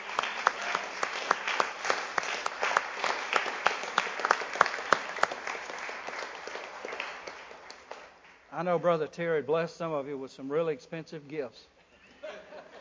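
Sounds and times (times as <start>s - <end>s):
audience applauding: 0.0s - 8.4s
speech: 8.6s - 11.7s
laughter: 12.0s - 12.7s.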